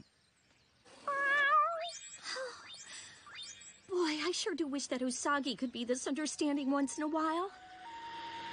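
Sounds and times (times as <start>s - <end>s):
cat meowing: 1.0s - 1.9s
speech: 4.4s - 7.7s.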